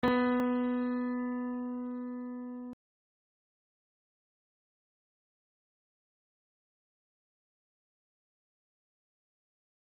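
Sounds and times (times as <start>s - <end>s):
single piano notes: 0.0s - 2.8s.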